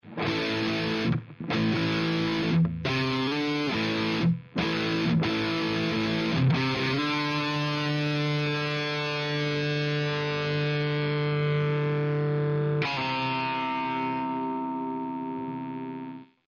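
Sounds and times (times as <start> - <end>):
JCM800 amplifier: 0.0 - 16.4.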